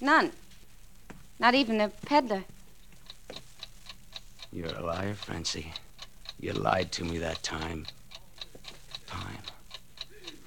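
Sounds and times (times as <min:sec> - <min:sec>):
speech: 0:00.0 - 0:00.4, 0:01.4 - 0:02.6, 0:04.5 - 0:05.8, 0:06.4 - 0:08.0
clock ticking fast: 0:03.0 - 0:10.4.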